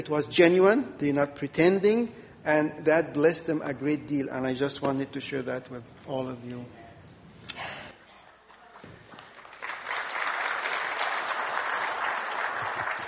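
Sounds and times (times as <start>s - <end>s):
speech: 0.0s - 6.8s
crowd applauding: 8.5s - 13.0s.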